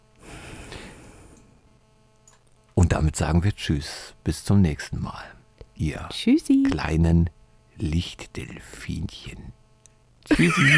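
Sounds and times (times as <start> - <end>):
deep breath in and out: 0.2 - 1.5
speech: 2.9 - 9.6, 10.3 - 10.7
laughter: 10.3 - 10.7.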